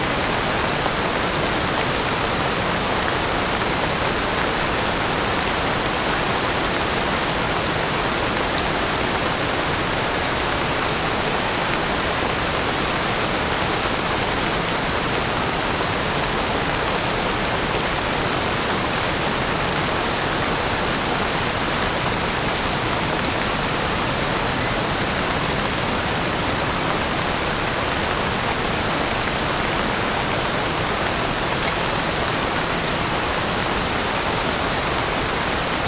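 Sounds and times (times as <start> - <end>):
gentle spring forest rain pattering on leaves and the ground: 0.1 - 35.8.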